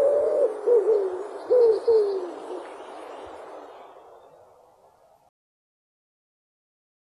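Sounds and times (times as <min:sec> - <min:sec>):
common wood pigeon cooing: 0:00.0 - 0:02.7
gentle background hiss: 0:00.0 - 0:05.3.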